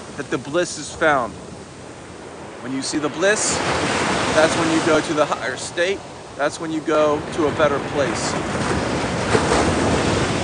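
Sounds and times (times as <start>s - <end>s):
ocean surf at the beach: 0.0s - 10.4s
wind buffeting the microphone: 0.0s - 10.4s
speech: 0.2s - 1.5s, 2.6s - 8.8s.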